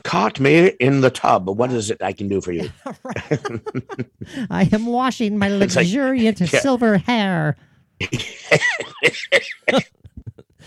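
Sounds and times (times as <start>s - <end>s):
speech: 0.1s - 10.0s
laughter: 2.5s - 4.9s
man coughing: 8.0s - 10.6s.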